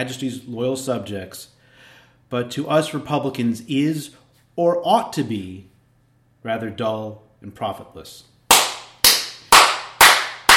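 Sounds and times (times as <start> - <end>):
speech: 0.0 - 1.6, 2.3 - 5.7, 6.4 - 8.3
one person applauding alone: 8.5 - 10.5.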